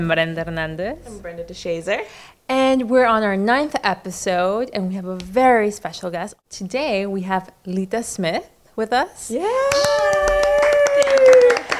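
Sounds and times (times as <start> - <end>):
speech: 0.0 - 9.9
person holding a long drawn-out cheer: 9.4 - 11.7
small audience clapping: 9.6 - 11.7.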